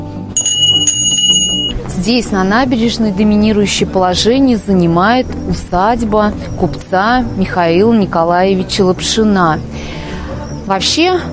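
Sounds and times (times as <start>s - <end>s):
small horse-harness shaft bell ringing: 0.4s - 1.8s
speech: 2.0s - 10.1s, 10.7s - 11.3s.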